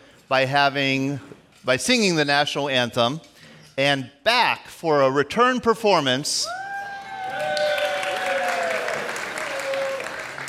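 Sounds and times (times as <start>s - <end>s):
speech: 0.3s - 6.6s
audience applause at a veterans' breakfast gathering: 6.9s - 10.4s.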